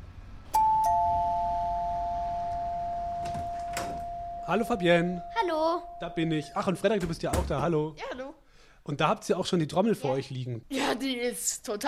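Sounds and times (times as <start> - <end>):
doorbell two-note ding-dong chime: 0.6 - 7.0
speech: 4.5 - 11.8.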